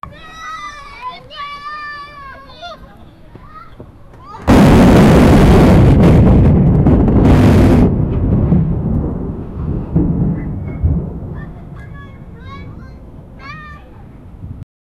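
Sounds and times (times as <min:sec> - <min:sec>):
children playing joyfully: 0:00.0 - 0:04.5, 0:11.3 - 0:14.2
thunder: 0:04.5 - 0:14.6.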